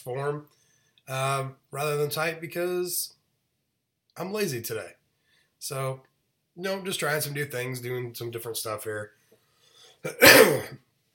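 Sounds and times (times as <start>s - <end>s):
speech: 0.0s - 3.2s, 4.2s - 5.0s, 5.6s - 9.2s, 10.0s - 10.9s
person coughing: 10.0s - 10.8s.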